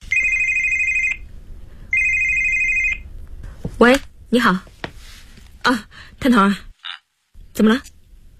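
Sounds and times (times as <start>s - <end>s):
mobile phone ringtone: 0.1s - 1.2s, 1.9s - 3.0s
speech: 3.8s - 4.7s, 5.7s - 6.7s, 7.6s - 7.9s.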